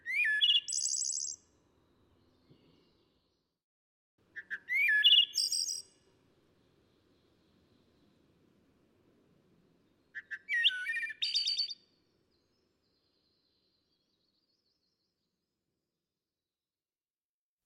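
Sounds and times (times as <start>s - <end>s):
songbird singing whistled and trilled phrases: 0.0s - 3.5s, 4.4s - 6.0s, 9.7s - 15.4s.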